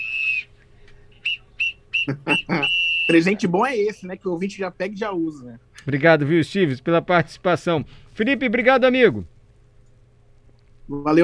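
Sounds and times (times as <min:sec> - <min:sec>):
shrill whistle blasts: 0:00.0 - 0:03.4
laughter: 0:02.0 - 0:02.8
speech: 0:02.1 - 0:09.4, 0:10.9 - 0:11.2.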